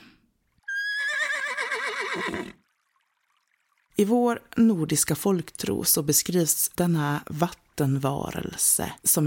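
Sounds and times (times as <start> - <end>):
horse neighing: 0.6 - 2.6
speech: 4.0 - 9.2.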